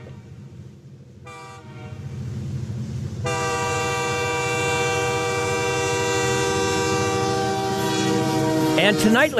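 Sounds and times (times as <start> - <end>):
train horn blowing a sustained chord: 0.0 - 0.4, 1.2 - 2.1, 3.2 - 9.3
train rumbling along: 0.0 - 9.3
speech: 8.8 - 9.3.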